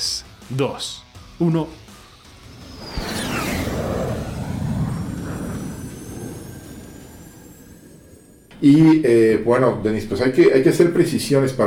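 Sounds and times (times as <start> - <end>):
speech: 0.5 - 1.8, 8.6 - 11.6
aircraft taking off: 2.3 - 9.3.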